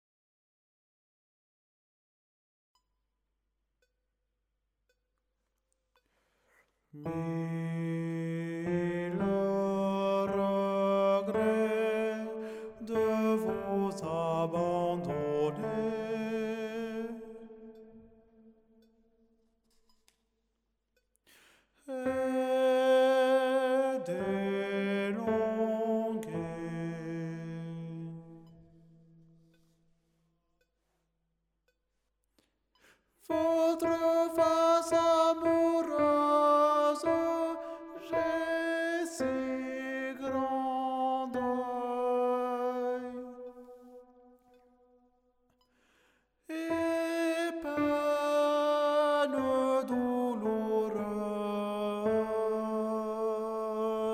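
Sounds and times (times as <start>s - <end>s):
tenor voice singing: 7.0s - 17.8s, 21.9s - 28.7s, 33.3s - 43.9s, 46.5s - 54.1s.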